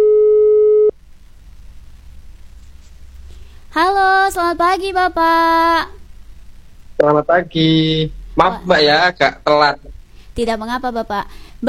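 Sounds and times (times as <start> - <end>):
telephone line tone while a call is being connected: 0.0 - 0.9
faint low hiss: 0.0 - 11.6
speech: 4.3 - 6.0, 7.0 - 11.6.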